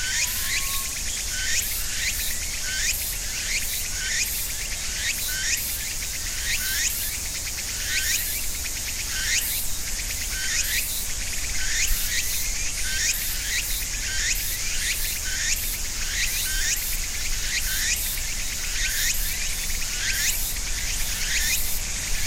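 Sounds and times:
higher chirp or bird note: 0:00.0 - 0:01.3
cicadas and other insects buzzing in ornamental cherry trees: 0:00.0 - 0:22.2.

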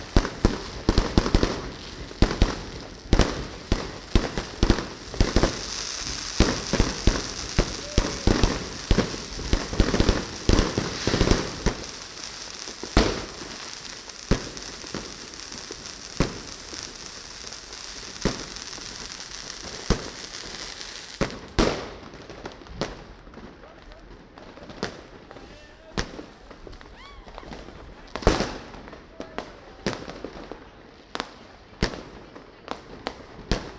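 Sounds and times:
hiss: 0:00.0 - 0:21.8
New Year's Eve fireworks crackling and popping outdoors: 0:00.0 - 0:33.7.

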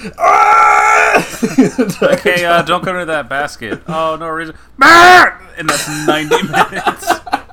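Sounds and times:
speech: 0:00.0 - 0:07.5
person imitating a human-like creature yell: 0:00.2 - 0:01.2, 0:04.8 - 0:05.4
laughter: 0:01.2 - 0:04.1, 0:05.7 - 0:07.5.

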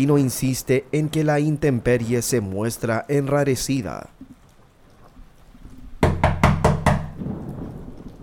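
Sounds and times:
speech: 0:00.0 - 0:04.2
steady rain-like hiss: 0:00.0 - 0:08.2
firm resonant knocking on a door: 0:06.0 - 0:07.2.

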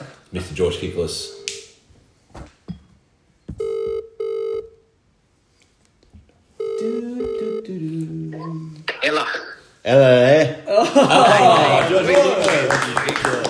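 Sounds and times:
speech: 0:00.3 - 0:01.4
phone ringing with electronic tones: 0:03.6 - 0:04.8, 0:06.6 - 0:07.8
laughter: 0:10.7 - 0:13.4.

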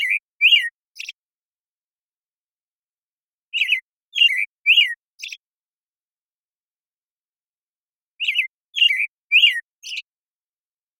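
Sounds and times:
American Robin Turdus migratorius morning song in Washington United States: 0:00.0 - 0:01.2, 0:03.5 - 0:05.4, 0:08.2 - 0:10.1.

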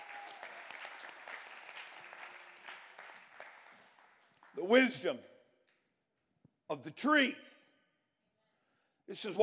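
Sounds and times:
church audience clapping to praise God: 0:00.0 - 0:04.9
speech: 0:04.6 - 0:05.3, 0:06.7 - 0:07.6, 0:09.1 - 0:09.4.

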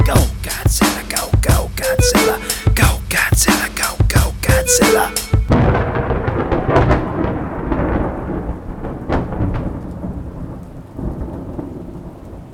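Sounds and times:
steady heavy rain: 0:00.0 - 0:12.5
thunderclap with crackling lightning: 0:05.5 - 0:12.5.

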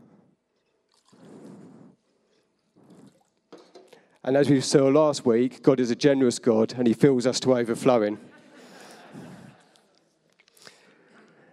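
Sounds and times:
water poured into an empty bottle: 0:00.6 - 0:04.2
speech: 0:04.2 - 0:08.3
laughter: 0:08.0 - 0:10.0.

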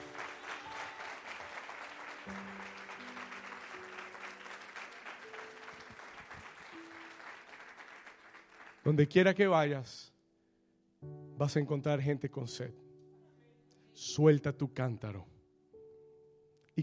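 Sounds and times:
crowd clapping: 0:00.0 - 0:09.0
speech: 0:08.9 - 0:10.1, 0:11.4 - 0:12.8, 0:14.0 - 0:15.3.

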